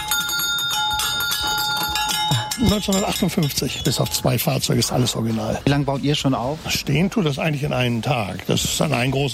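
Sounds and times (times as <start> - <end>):
vintage 1950s fire engine bell ringing: 0.0 - 4.7
speech: 2.6 - 9.3.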